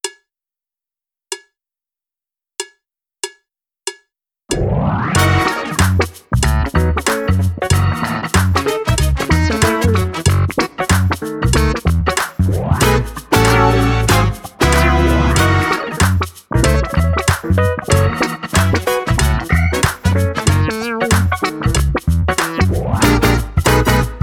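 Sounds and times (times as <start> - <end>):
laid back funk music: 5.1 - 24.2.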